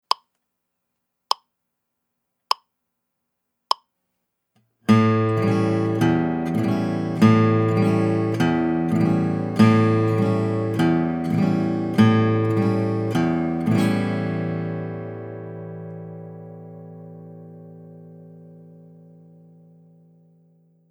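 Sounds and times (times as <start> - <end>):
alternating bass strum on an A7 chord: 4.9 - 20.0.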